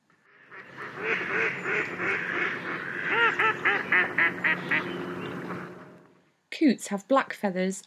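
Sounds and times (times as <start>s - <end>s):
ducks quacking at a lake: 0.1s - 6.0s
speech: 6.6s - 7.8s.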